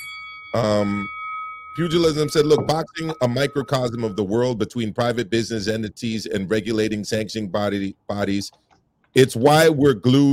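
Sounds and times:
person imitating a bell ding: 0.0 - 4.9
speech: 0.6 - 1.2, 1.8 - 8.6, 9.2 - 10.3
faint steady high tone: 1.8 - 4.5.

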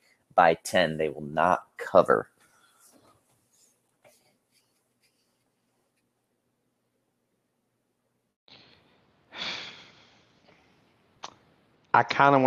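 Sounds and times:
speech: 0.4 - 2.3, 11.9 - 12.4
heavy breathing: 8.6 - 10.8
person gasping for air: 9.3 - 10.2.

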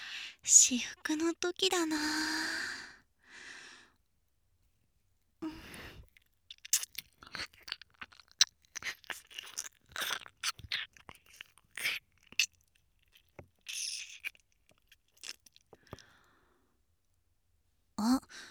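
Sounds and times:
speech: 0.4 - 2.7
ASMR ear-nibbling mouth sounds: 6.0 - 16.0
crunchy chewing clicks: 6.0 - 16.2.

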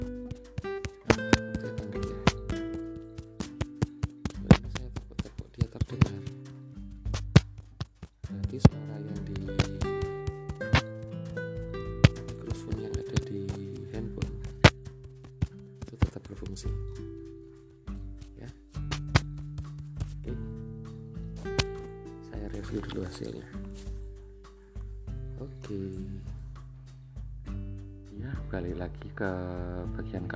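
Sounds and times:
hand tapping on a mobile phone: 0.0 - 17.0, 18.0 - 20.2
steady tonal music: 0.0 - 30.3
speech: 29.0 - 30.3.

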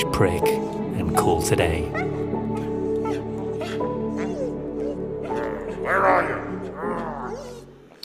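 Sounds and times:
speech: 0.0 - 0.6, 1.2 - 2.1
dog whimpering whines: 1.9 - 7.8.

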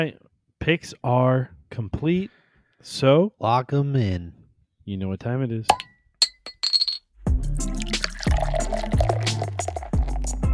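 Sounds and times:
speech: 0.0 - 5.9
glasses clinking in a toast: 5.7 - 7.0, 7.6 - 10.4
resonant liquid-like tones: 7.6 - 10.4.

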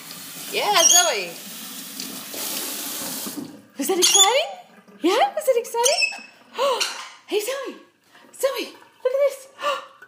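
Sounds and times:
steady stream of water running and splashing: 0.0 - 6.8, 8.0 - 10.0
speech: 0.5 - 1.5, 3.8 - 9.8.

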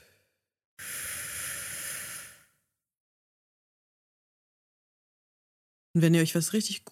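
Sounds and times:
breathing in through nose: 0.8 - 2.6
breathing out through mouth: 0.8 - 2.7
speech: 6.0 - 6.8.

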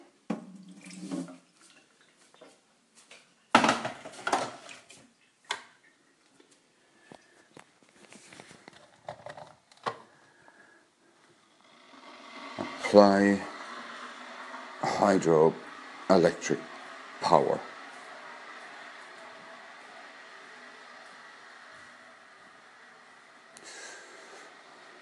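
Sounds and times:
water poured from a kettle into a sink: 0.5 - 1.5, 11.4 - 21.6
speech: 12.9 - 13.5, 15.0 - 17.7.

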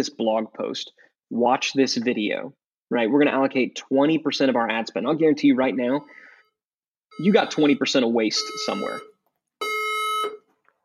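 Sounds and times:
speech: 0.0 - 6.2, 7.2 - 9.1
fire alarm blaring: 5.8 - 6.5, 7.1 - 10.8.

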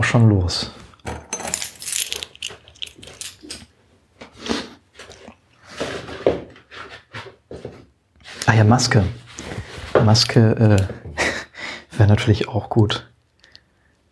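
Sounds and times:
speech: 0.1 - 0.8, 8.5 - 9.2, 10.0 - 11.0, 12.0 - 13.1
keys jingling as they are picked up: 1.3 - 3.7.

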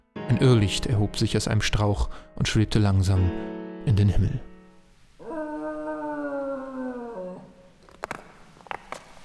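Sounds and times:
speech: 0.3 - 4.5
dog howling at the edge of an abyss: 5.2 - 7.6.

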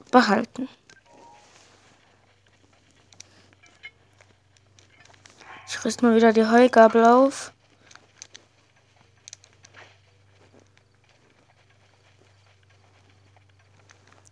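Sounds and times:
horse hooves clip-clopping as horses run away: 0.0 - 14.2
speech: 0.1 - 0.8, 5.7 - 7.6.

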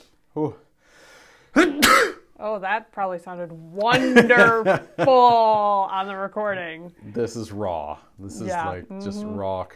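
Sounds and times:
speech: 0.4 - 0.6, 1.6 - 9.7
person sneezing: 1.5 - 2.2.

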